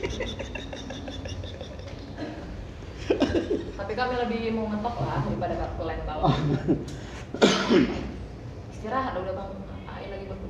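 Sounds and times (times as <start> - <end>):
laughter: 0.0 - 3.8
speech: 3.4 - 8.0, 8.8 - 9.7
person coughing harshly: 7.4 - 8.1.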